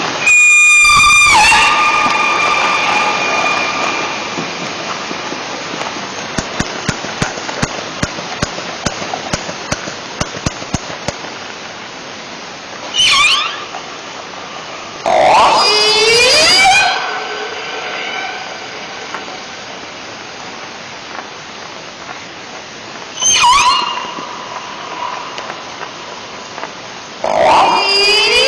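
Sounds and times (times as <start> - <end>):
steady hiss: 0.0 - 28.4
orca brief high squeal: 0.2 - 4.7, 12.9 - 13.8, 15.1 - 19.0, 23.2 - 25.4, 27.3 - 28.4.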